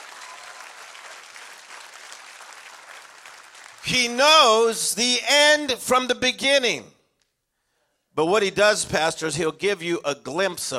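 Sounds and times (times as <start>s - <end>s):
large audience applauding: 0.0s - 4.0s
speech: 3.8s - 6.9s, 8.2s - 10.7s.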